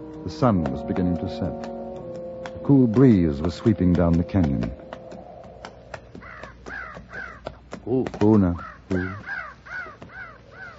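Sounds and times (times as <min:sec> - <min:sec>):
speech: 0:00.2 - 0:01.8, 0:02.7 - 0:04.9, 0:07.9 - 0:09.3
flock of crows cawing: 0:05.1 - 0:10.7
brief voice murmuring: 0:07.8 - 0:10.0.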